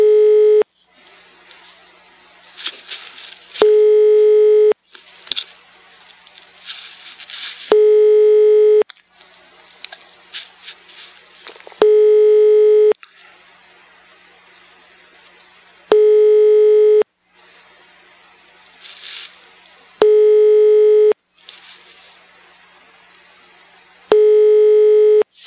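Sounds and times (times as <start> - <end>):
buzzing telephone line tone on a call being placed to Sweden: 0.0 - 0.7, 3.6 - 4.8, 7.7 - 8.9, 11.8 - 13.0, 15.9 - 17.1, 20.0 - 21.2, 24.1 - 25.3
soft noisy sounds: 0.0 - 25.4.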